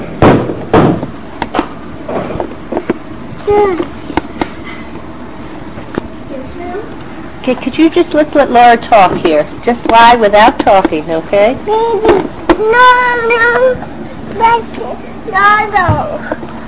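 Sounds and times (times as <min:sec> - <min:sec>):
door to the upstairs pushed shut: 0:00.2 - 0:01.1
speech: 0:03.5 - 0:03.9, 0:06.7 - 0:16.4.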